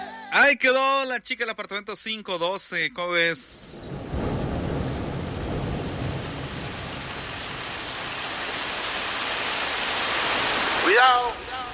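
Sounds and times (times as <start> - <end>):
speech: 0.5 - 4.2, 11.0 - 11.4
steady dense hiss of rain-like noise: 3.6 - 11.7
low thunder rumbling: 3.8 - 9.0.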